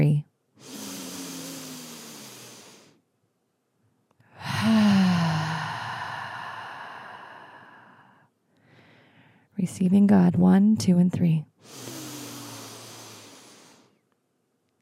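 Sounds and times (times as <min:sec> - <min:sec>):
deep breaths in and out during a guided breathing exercise: 0:00.6 - 0:03.0, 0:04.2 - 0:09.5, 0:11.6 - 0:14.0
speech: 0:09.6 - 0:11.8.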